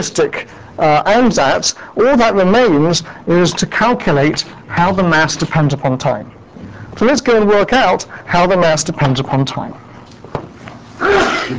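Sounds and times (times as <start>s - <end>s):
speech: 0.0s - 6.4s, 7.0s - 9.9s, 11.0s - 11.5s
sneeze: 11.0s - 11.5s.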